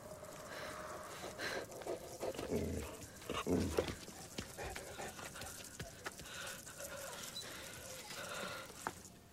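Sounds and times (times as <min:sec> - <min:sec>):
steady hiss: 0:00.0 - 0:09.3
dog panting heavily at night: 0:01.4 - 0:08.4
dog growling at night: 0:01.9 - 0:04.0.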